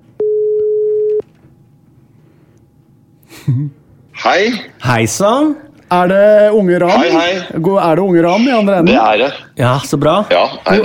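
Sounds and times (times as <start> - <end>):
telephone ringing tone while placing a call: 0.2 - 1.2
speech: 3.5 - 10.8.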